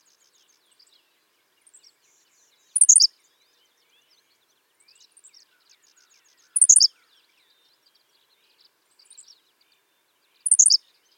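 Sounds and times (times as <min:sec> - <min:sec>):
Henslow's sparrow Ammodramus henslowii singing brief high hiccuping phrase: 0:00.0 - 0:11.1
soft high twitters: 0:02.8 - 0:03.1, 0:06.6 - 0:06.9, 0:10.5 - 0:10.8.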